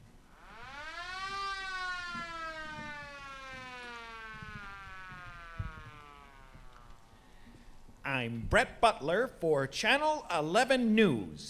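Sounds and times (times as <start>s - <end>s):
ambulance siren wailing: 0.3s - 7.2s
low knocks: 1.2s - 6.7s
speech: 8.2s - 11.4s.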